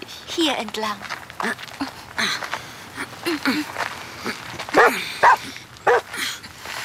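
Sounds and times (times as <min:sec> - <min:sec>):
speech: 0:00.4 - 0:02.5, 0:03.2 - 0:05.6
blood-tracking scent hound barking and yipping: 0:04.8 - 0:06.1.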